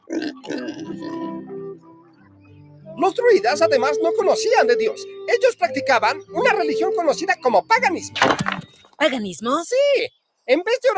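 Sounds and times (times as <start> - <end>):
pig grunting and oinking: 0.0 - 1.4
speech: 3.0 - 10.9.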